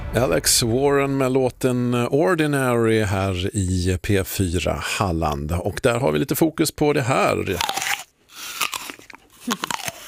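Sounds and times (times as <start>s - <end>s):
speech: 0.1s - 7.8s, 9.5s - 9.8s
person biting into an apple and chewing: 7.4s - 10.0s.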